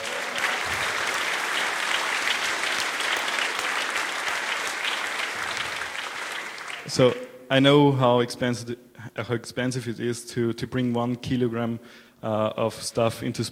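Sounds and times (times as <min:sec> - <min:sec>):
audience applause: 0:00.0 - 0:07.3
speech: 0:06.9 - 0:13.4.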